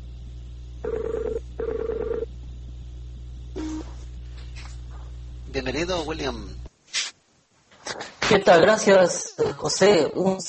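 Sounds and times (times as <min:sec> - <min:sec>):
steady low hum: 0:00.0 - 0:08.2
speech: 0:00.8 - 0:01.2, 0:05.6 - 0:06.6, 0:08.3 - 0:10.4
Skype call ringing electronic tones while connecting: 0:00.8 - 0:02.3.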